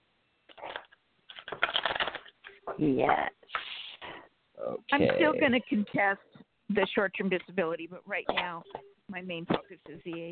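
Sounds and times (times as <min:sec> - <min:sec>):
deck of cards being shuffled: 0:00.5 - 0:04.0
speech: 0:02.8 - 0:03.4, 0:04.7 - 0:10.3.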